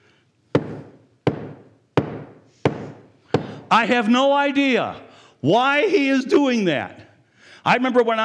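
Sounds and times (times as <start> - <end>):
hammer banging on a floor: 0.6 - 3.6
speech: 3.7 - 7.0, 7.6 - 8.2.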